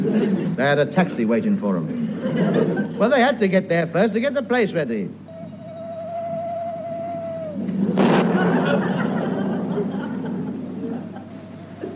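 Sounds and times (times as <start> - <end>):
laughter: 0.0 - 0.7, 1.9 - 3.2, 7.5 - 11.9
speech: 0.1 - 5.2
owl hooting: 5.1 - 11.9
thunder crack rolling into a long loud rumble: 5.1 - 11.9.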